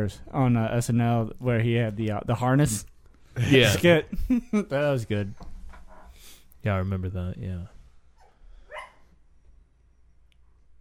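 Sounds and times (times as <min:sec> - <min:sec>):
speech: 0:00.0 - 0:05.5, 0:06.6 - 0:07.8
dog yelping: 0:08.2 - 0:09.0
dog barking: 0:08.7 - 0:09.1.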